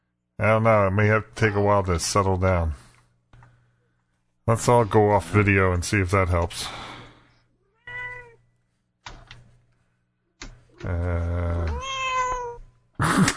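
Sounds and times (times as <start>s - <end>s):
speech: 0.4s - 2.8s, 4.5s - 6.9s, 10.8s - 11.4s
cat meowing with a chirp and a wavering yowl: 7.7s - 8.4s, 11.7s - 12.6s.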